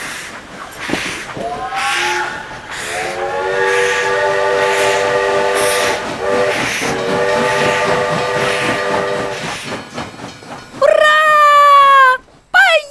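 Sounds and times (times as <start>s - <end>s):
steam locomotive getting underway on rails pulling train cars: 0.0s - 12.6s
multi-toned steam locomotive whistle blasts: 0.8s - 9.5s.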